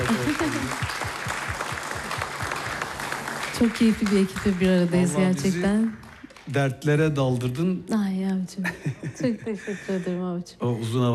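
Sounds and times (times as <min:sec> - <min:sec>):
laughter: 0:00.0 - 0:01.0, 0:08.6 - 0:10.2
audience applause for saz players in a folk music setting: 0:00.0 - 0:07.4
speech: 0:03.6 - 0:11.1.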